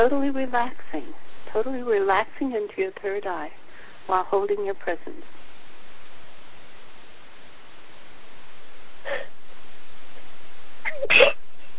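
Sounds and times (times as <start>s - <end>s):
speech: 0.0s - 5.4s, 11.0s - 11.4s
steady hiss: 0.0s - 11.7s
soft brief breathy sound: 9.0s - 9.3s
sharp loud sneeze: 10.9s - 11.4s.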